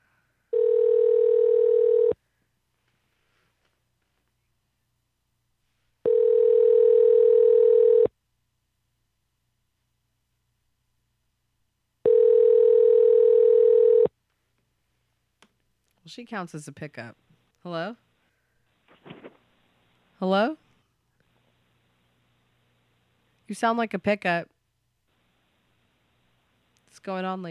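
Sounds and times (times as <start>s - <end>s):
telephone tones while calling back: 0.5s - 2.2s, 6.0s - 8.1s, 12.0s - 14.1s
speech: 16.2s - 18.0s, 20.2s - 20.6s, 23.5s - 24.5s, 27.1s - 27.4s.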